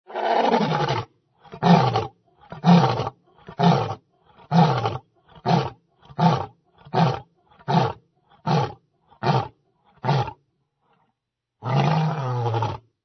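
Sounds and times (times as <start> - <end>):
lion: 0.1 - 12.9.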